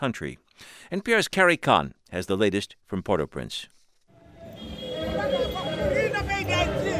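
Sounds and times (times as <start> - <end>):
speech: 0.0 - 3.8
crowd of anti-government protesters shouting in Port-au-Prince Haiti: 4.4 - 6.9.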